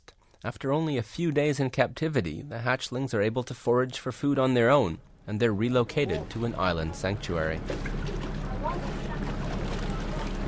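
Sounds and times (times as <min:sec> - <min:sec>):
speech: 0:00.4 - 0:08.1
water noise: 0:03.2 - 0:10.4
wind: 0:03.2 - 0:10.4
boat engine rumbling while pulling up at an island pier: 0:04.2 - 0:10.4.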